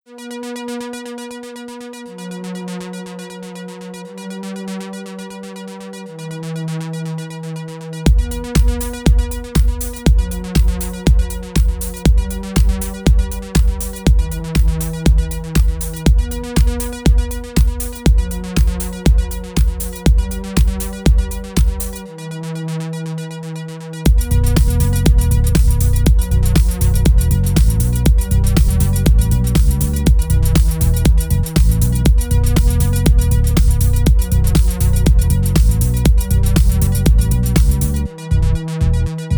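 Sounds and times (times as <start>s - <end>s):
fast steep techno music tuned to 432 Hz: 8.1s - 22.4s, 24.1s - 39.3s.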